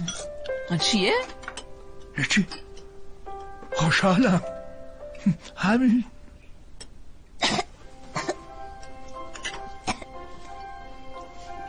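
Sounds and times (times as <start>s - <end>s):
speech: 0.7s - 1.4s, 2.2s - 2.6s, 3.8s - 4.5s, 5.2s - 6.1s
dry coughs: 7.4s - 8.5s, 9.4s - 10.2s.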